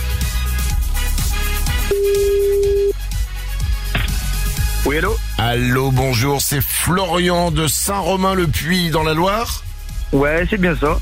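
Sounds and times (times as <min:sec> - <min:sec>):
thumping rhythmic music bed: 0:00.0 - 0:10.9
telephone ring tone heard on the caller's end: 0:01.9 - 0:03.0
speech: 0:04.9 - 0:10.9.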